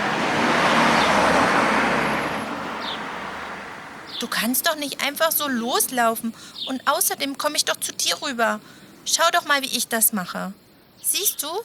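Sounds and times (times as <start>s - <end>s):
car driving by on the street at a crossroads: 0.0s - 4.3s
steady traffic noise at a crossroads: 0.0s - 11.6s
speech: 4.2s - 11.6s.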